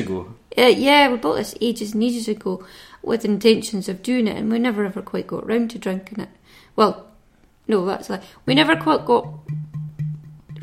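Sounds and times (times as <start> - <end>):
speech: 0.1 - 7.1, 7.7 - 9.6
bottle banged to shake out last drops with hollow thuds: 8.8 - 10.6.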